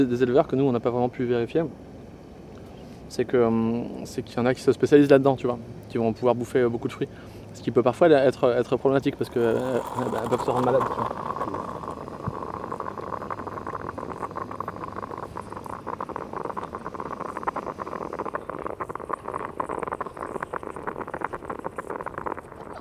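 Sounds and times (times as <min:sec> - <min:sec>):
speech: 0:00.0 - 0:01.9, 0:03.1 - 0:11.6
small coffee pot bubbling while brewing: 0:08.2 - 0:22.7.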